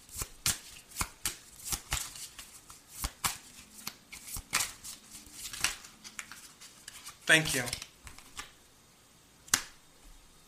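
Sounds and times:
playing cards shuffled and drawn for a card reading: 0.1s - 8.6s
speech: 7.3s - 7.8s.

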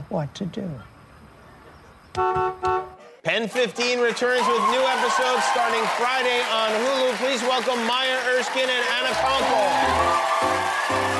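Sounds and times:
speech: 0.1s - 0.9s, 2.2s - 11.1s
car horn honking: 2.1s - 3.0s.

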